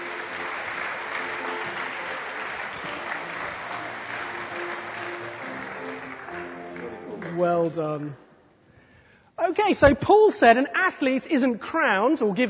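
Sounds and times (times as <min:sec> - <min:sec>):
audience applause of many hands clapping: 0:00.0 - 0:08.0
speech: 0:07.4 - 0:08.3, 0:09.5 - 0:12.4.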